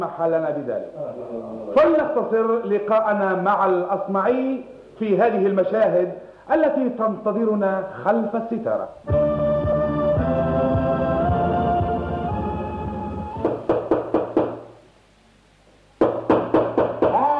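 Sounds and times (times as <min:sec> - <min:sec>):
speech: 0:00.0 - 0:09.3
music: 0:09.0 - 0:13.9
firm knocking on a door: 0:13.4 - 0:14.6, 0:16.0 - 0:17.3.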